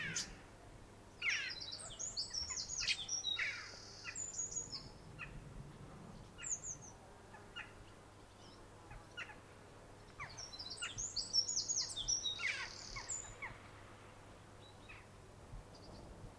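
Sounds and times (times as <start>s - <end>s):
low background noise: 0.0s - 16.3s
Eurasian wren Troglodytes troglodytes singing high fast twittering and trilled notes: 1.2s - 5.4s, 6.2s - 9.4s, 10.0s - 13.6s.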